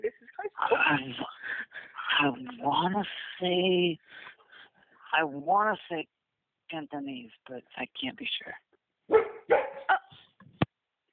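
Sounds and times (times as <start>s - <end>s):
speech: 0.9s - 1.3s, 2.2s - 4.0s, 5.1s - 9.2s
female dog barking and yipping: 9.1s - 10.2s.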